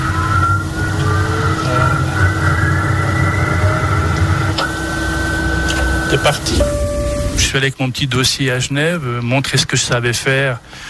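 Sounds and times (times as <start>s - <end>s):
large engine spooling up with rumble and whine: 0.0s - 7.6s
speech: 6.1s - 6.7s, 7.5s - 10.8s.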